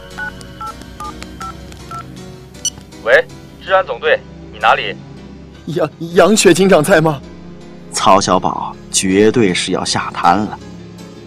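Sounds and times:
touch-tone telephone keypad beeps as a number is dialed: 0.1 - 2.8
speech: 3.0 - 7.3, 7.9 - 10.7.

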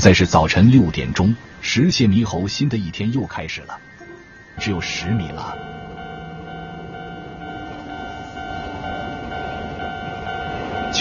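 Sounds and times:
speech: 0.0 - 3.9, 4.6 - 5.7
steady high-pitched metallic tones of a train: 3.8 - 10.9
train rumbling past: 3.9 - 10.9.

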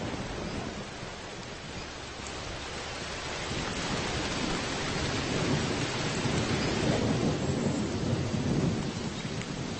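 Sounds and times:
heavy rain pouring: 0.0 - 9.7
low rumble of thunder: 0.0 - 9.7.

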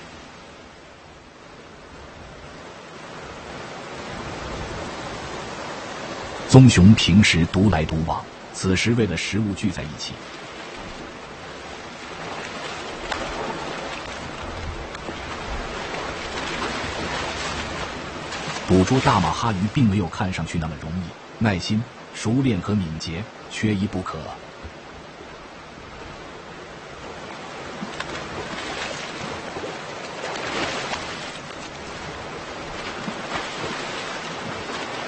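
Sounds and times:
rushing waterfall water: 0.0 - 35.0
narrator speaking: 6.5 - 10.2, 18.6 - 24.4
speech: 6.5 - 10.4, 18.7 - 24.5.

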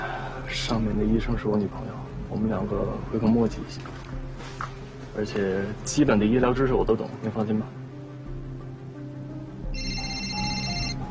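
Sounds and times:
speech: 0.5 - 4.1, 5.2 - 7.8
telephone electronic ringtone: 9.7 - 11.0.

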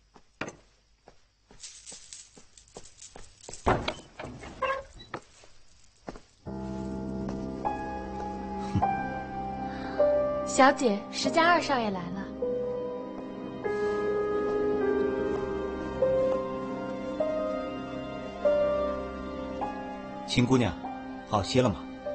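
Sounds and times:
light footsteps: 0.0 - 9.1, 13.1 - 18.0
wooden door opening with clack and rattle: 3.5 - 5.2
sustained music: 6.5 - 22.1
speech: 10.6 - 12.2, 20.4 - 21.9.

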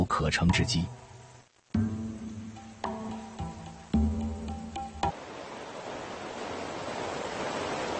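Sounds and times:
speech: 0.2 - 1.0
sustained music chords: 0.5 - 5.1
small waterfall rushing: 4.8 - 7.9.

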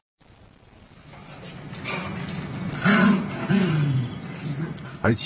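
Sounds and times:
dog's food-guarding growl played from a recording: 1.7 - 5.1.

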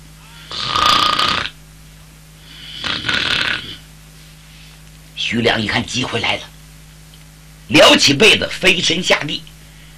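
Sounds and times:
storyteller imitating snoring with his voice: 0.5 - 1.6, 2.5 - 3.9
speech: 5.3 - 6.5, 7.7 - 9.5.

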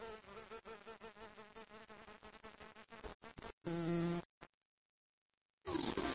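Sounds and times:
bumblebee buzzing flying back to its nest: 0.0 - 4.3.

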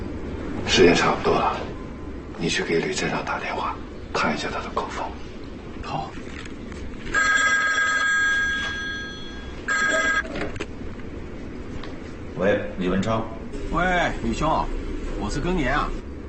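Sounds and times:
steady hum: 0.0 - 16.2
people talking: 0.7 - 1.8, 2.4 - 5.2, 5.8 - 6.2, 12.4 - 16.0
telephone ringing: 7.1 - 10.4.

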